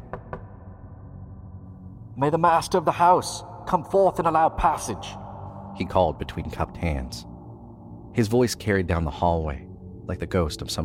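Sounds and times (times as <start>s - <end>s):
knocks on a door: 0.0s - 0.6s
speech: 2.2s - 5.2s, 5.8s - 7.3s, 8.2s - 10.8s.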